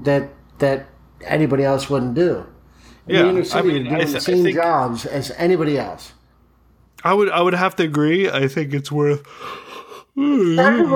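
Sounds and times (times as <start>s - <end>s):
speech: 0.0s - 6.2s, 7.0s - 10.9s
person yawning: 9.4s - 10.9s.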